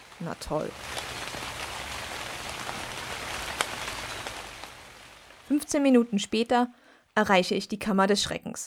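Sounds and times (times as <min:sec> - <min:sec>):
sharp raindrops pattering on a nearby surface: 0:00.0 - 0:05.6
steady rain falling: 0:00.0 - 0:06.5
speech: 0:00.2 - 0:01.0, 0:05.5 - 0:08.6.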